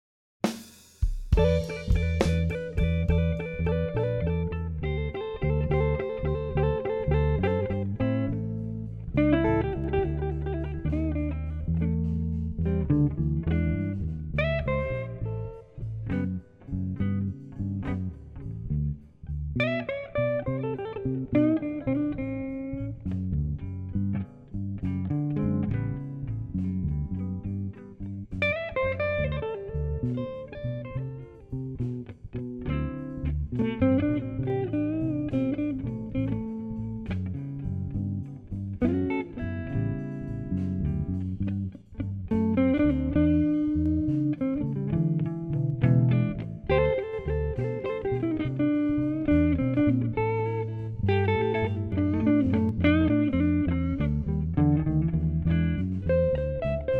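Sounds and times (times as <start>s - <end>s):
Chicago Westside slow blues play-along track: 1.4s - 56.9s.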